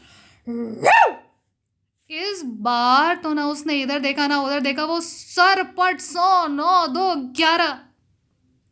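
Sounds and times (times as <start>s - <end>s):
speech: 0.5s - 1.2s, 2.4s - 7.9s
big dog barking: 0.8s - 1.3s.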